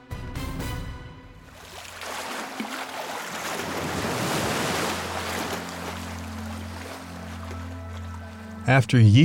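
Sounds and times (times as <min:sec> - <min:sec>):
ocean waves: 0:01.4 - 0:08.7
speech: 0:08.7 - 0:09.2.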